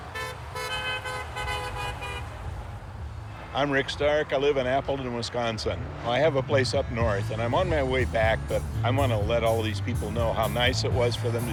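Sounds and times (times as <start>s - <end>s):
car horn honking in short quick bursts: 0.0s - 2.5s
steady low rumble of engines and road noise: 0.0s - 11.5s
speech: 3.6s - 11.5s.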